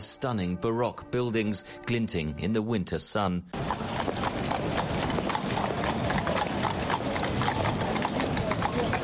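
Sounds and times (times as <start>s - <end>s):
speech: 0.0s - 3.8s
horse hooves clopping on cobblestones: 3.5s - 9.0s
busy street ambience: 3.6s - 9.0s.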